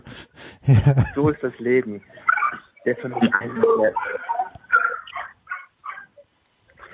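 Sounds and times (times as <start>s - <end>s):
speech: 0.1s - 4.3s
laughter: 0.4s - 5.1s
dog barking and yipping at the mail delivery: 2.2s - 2.7s, 4.0s - 6.2s.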